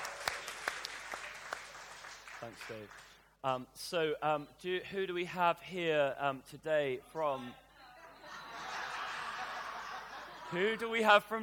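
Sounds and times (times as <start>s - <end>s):
audience applauding at a church weekend gathering: 0.0s - 3.2s
speech: 2.4s - 7.6s, 10.5s - 11.4s
laughter: 7.8s - 11.2s.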